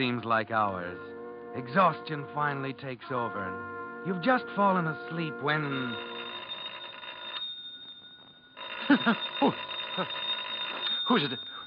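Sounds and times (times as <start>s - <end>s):
speech: 0.0s - 6.2s, 8.9s - 10.2s, 11.1s - 11.5s
telephone ringing: 4.0s - 11.6s
person laughing: 8.8s - 10.2s.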